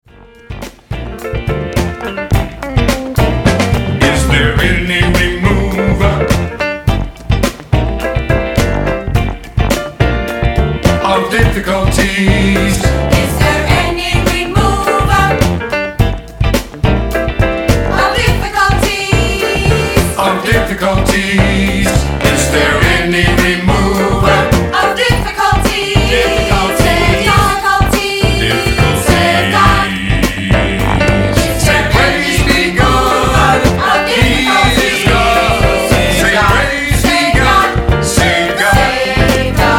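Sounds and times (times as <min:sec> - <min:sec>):
R&B funk music: 0:00.0 - 0:39.7.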